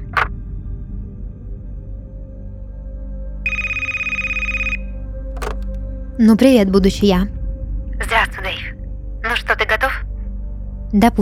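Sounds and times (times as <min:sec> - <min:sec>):
telephone ringing in a trilling burst: 0:03.5 - 0:05.6
speech: 0:06.2 - 0:07.4, 0:09.4 - 0:09.8, 0:10.9 - 0:11.2.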